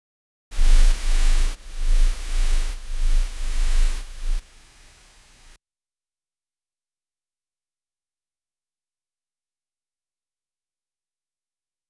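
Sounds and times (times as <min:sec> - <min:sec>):
camera shake effect: 0:00.6 - 0:05.5.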